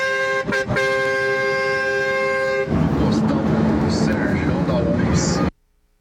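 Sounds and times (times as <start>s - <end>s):
semi-trailer truck air horn blaring to scare off a jaguar: 0.0s - 3.2s
semi-trailer truck engine and road noise: 0.0s - 5.9s.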